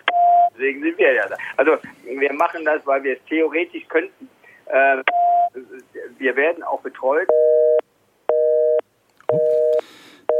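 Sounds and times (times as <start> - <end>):
speech: 0.6 - 7.6
telephone busy signal after a dropped call: 7.3 - 10.3.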